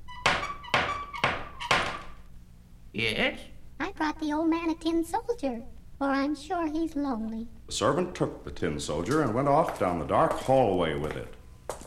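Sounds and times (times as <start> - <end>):
knocking on a carved wooden front door: 0.2 - 2.2
speech: 3.0 - 11.4.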